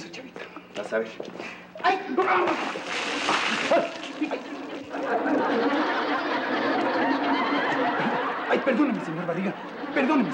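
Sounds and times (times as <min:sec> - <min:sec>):
speech: 0:00.2 - 0:06.8, 0:07.6 - 0:10.3
water thrown out splashing: 0:02.3 - 0:04.6
excited voices chattering and laughing: 0:03.6 - 0:10.3.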